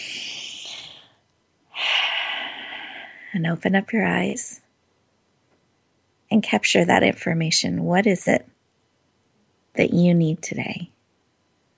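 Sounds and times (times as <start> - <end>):
deep breath during a guided relaxation exercise: 0.0 - 3.4
speech: 3.3 - 4.6, 6.3 - 8.6, 9.8 - 10.9.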